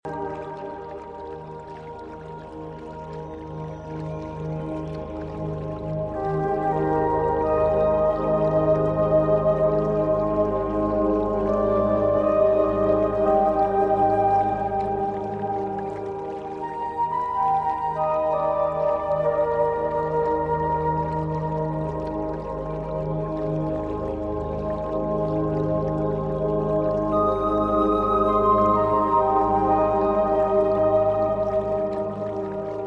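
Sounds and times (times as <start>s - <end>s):
Celtic flute meditation music: 0.0s - 32.8s
magical forest stream: 0.0s - 32.8s.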